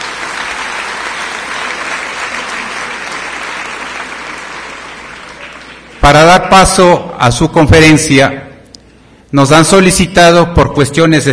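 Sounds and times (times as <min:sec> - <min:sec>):
large audience applauding: 0:00.0 - 0:06.8
speech: 0:06.0 - 0:08.4, 0:09.3 - 0:11.3.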